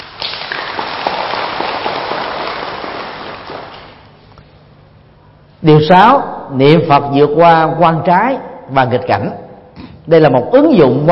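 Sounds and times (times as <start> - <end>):
audience at a Buddhist talk applauding: 0.2 - 4.0
speech: 5.6 - 9.4, 10.1 - 11.1.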